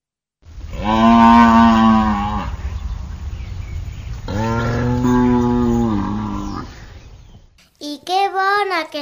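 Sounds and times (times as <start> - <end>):
cow mooing: 0.7 - 2.6, 4.3 - 6.9.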